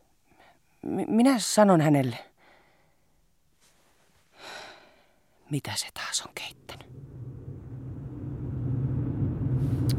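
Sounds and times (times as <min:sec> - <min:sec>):
speech: 0:00.8 - 0:02.3, 0:05.5 - 0:07.0
car speeding far over the limit, engine and road rumble: 0:06.4 - 0:09.9.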